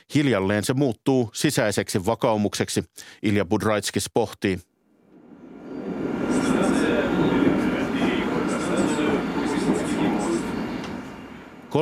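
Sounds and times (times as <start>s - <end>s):
speech: 0.0s - 4.7s
faint high squeals of a metro train: 5.2s - 11.7s
metro train rumbling at Lubyanka station in the Moscow underground: 5.2s - 11.7s.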